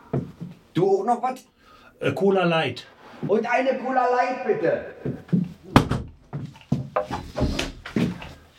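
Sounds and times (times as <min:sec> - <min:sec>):
footsteps on a wooden plank floor: 0:00.0 - 0:00.7, 0:05.0 - 0:08.4
speech: 0:00.1 - 0:05.1.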